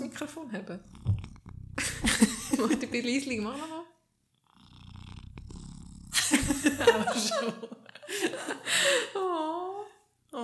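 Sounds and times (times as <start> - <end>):
domestic cat purring on a person's lap: 0.0 - 7.3
speech: 0.2 - 1.1, 2.0 - 3.9, 6.4 - 9.7
laughter: 1.8 - 3.0, 6.2 - 9.6.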